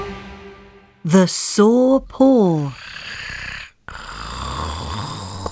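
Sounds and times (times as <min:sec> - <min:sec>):
speech: 0:01.2 - 0:02.8
sleeping tiger snoring: 0:02.7 - 0:05.4.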